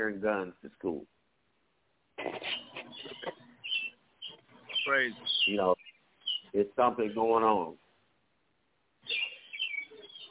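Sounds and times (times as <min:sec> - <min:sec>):
speech: 0:00.0 - 0:01.2, 0:04.8 - 0:05.9, 0:06.5 - 0:07.8
birds chirping and tweeting: 0:02.2 - 0:07.8, 0:09.0 - 0:10.2.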